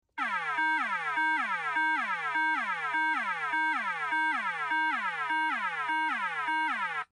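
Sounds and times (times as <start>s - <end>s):
emergency vehicle safety warning siren: 0.1s - 7.1s.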